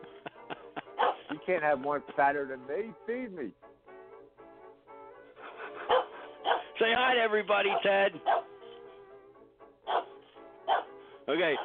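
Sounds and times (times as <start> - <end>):
laughter: 0.0 - 1.6, 5.4 - 6.5
small dog barking: 1.0 - 1.3, 5.9 - 6.7, 7.7 - 8.5, 9.9 - 10.9
speech: 1.5 - 3.7, 6.8 - 8.4, 11.3 - 11.6.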